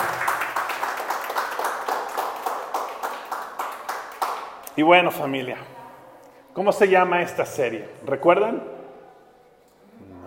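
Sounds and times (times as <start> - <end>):
crowd applauding in a large room: 0.0 - 4.7
sharper rhythmic claps: 0.0 - 4.8
speech: 4.8 - 5.7, 6.6 - 8.7.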